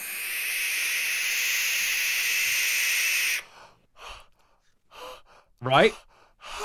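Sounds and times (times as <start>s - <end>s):
barn owl screeching: 0.0s - 3.5s
short breathy gasps: 3.4s - 6.6s
speech: 5.6s - 6.1s.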